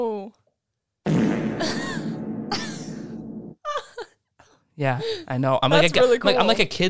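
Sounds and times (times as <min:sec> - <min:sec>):
fart sound effect from soundboard button: 0:01.1 - 0:03.6
speech: 0:04.8 - 0:06.8.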